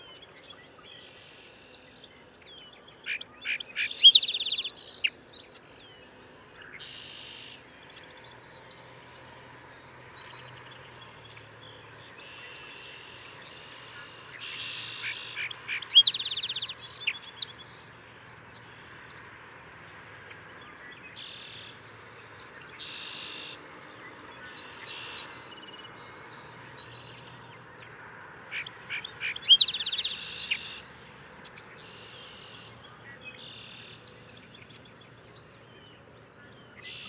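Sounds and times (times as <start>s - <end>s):
Song Sparrow Melospiza melodia: 0.0s - 37.0s.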